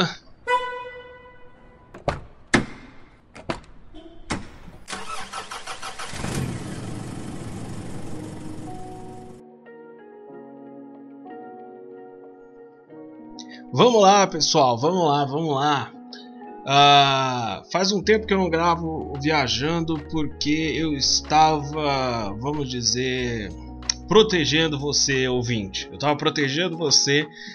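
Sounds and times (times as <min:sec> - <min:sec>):
speech: 0:00.0 - 0:00.2, 0:13.8 - 0:16.0, 0:16.7 - 0:27.5
sharp clunks: 0:01.9 - 0:04.9
car engine cranking, revving and idling: 0:04.3 - 0:09.4.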